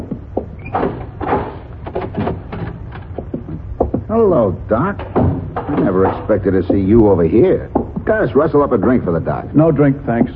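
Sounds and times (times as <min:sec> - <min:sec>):
wooden door being opened with latch and frame rattling: 0:00.0 - 0:07.2
speech: 0:04.1 - 0:10.3.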